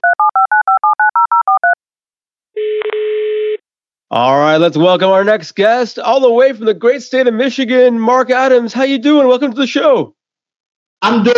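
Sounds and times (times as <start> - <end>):
steady phone line tone: 0.0 - 1.8, 2.6 - 3.6
telephone keypad beeps dialing: 0.0 - 1.8
speech: 4.1 - 10.2, 11.0 - 11.3.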